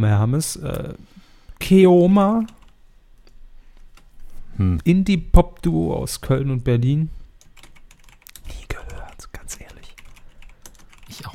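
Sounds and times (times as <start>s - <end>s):
speech: 0.0s - 2.6s, 4.6s - 7.2s
typing on a computer keyboard: 7.4s - 11.2s.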